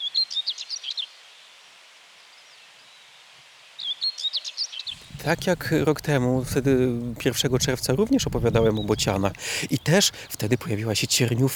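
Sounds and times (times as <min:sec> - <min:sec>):
faint outdoor hiss: 0:00.0 - 0:11.5
Eurasian skylark singing: 0:04.9 - 0:11.5
speech: 0:05.2 - 0:11.5.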